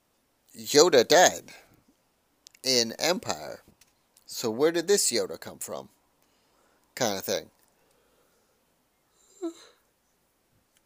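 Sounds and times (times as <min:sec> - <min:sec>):
speech: 0:00.6 - 0:01.6, 0:02.6 - 0:03.7, 0:04.3 - 0:06.0, 0:07.0 - 0:07.6
person yawning with a low voiced groan: 0:09.3 - 0:09.8.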